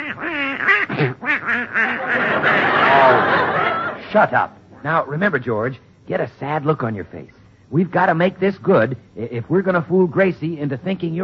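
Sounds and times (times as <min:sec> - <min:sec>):
duck quacking in a bed: 0:00.0 - 0:03.2
speech: 0:00.1 - 0:11.2
laughter: 0:01.0 - 0:04.4.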